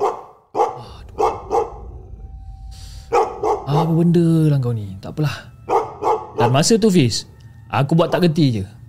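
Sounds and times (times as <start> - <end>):
dog barking loudly: 0.0 - 1.8, 5.7 - 6.6
low rumbling background: 0.8 - 5.7
speech: 3.7 - 5.5, 6.4 - 8.8.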